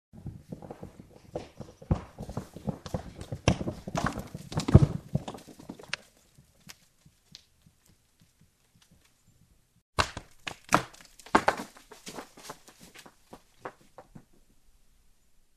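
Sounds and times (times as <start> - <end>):
stone rolling down: 0.2 - 7.4, 10.2 - 14.5.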